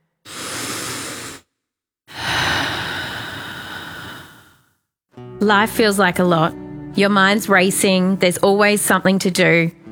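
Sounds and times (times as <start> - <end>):
person taking a deep breath: 0.2 - 1.5, 2.1 - 4.9
speech: 5.4 - 9.8.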